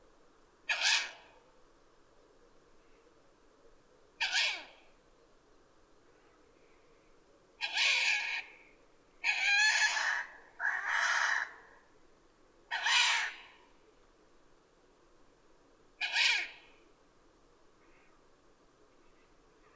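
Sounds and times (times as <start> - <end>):
quiet background hiss: 0.0 - 19.7
owl screeching: 0.7 - 1.3, 4.2 - 4.8, 7.6 - 8.5, 9.2 - 11.6, 12.7 - 13.6, 16.0 - 16.7.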